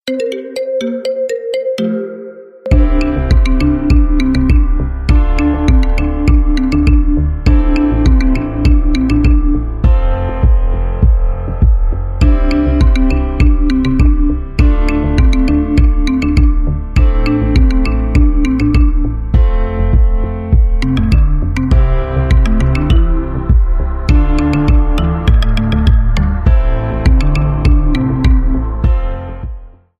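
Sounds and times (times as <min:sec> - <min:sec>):
marimba remix: 0:00.0 - 0:29.7.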